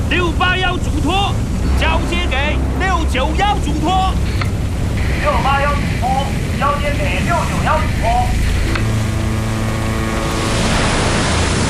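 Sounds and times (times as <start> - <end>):
churning sea waves: 0.0 - 11.6
force-7 wind roaring at sea: 0.0 - 11.6
tugboat engine hum while towing an energy station platform: 0.0 - 11.6
speech: 0.1 - 4.5, 5.1 - 8.5.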